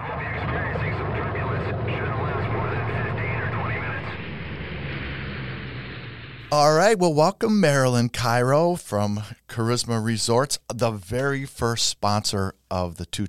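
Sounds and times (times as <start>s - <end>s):
indistinct voices: 0.0s - 4.4s
steady roar of an airplane in flight: 0.0s - 6.5s
speech: 6.5s - 13.2s.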